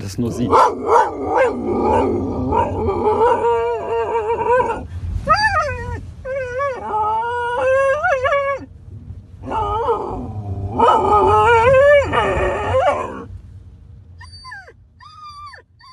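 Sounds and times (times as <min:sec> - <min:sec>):
speech: 0:00.0 - 0:03.2
dog yelping barks: 0:00.5 - 0:02.1
dog howling and yowling: 0:00.5 - 0:08.7, 0:09.4 - 0:13.3.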